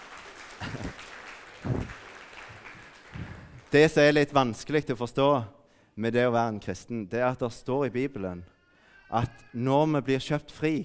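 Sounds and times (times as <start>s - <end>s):
faint scattered applause from a small crowd: 0.0s - 3.9s
laughter: 0.6s - 1.9s
speech: 3.7s - 10.8s.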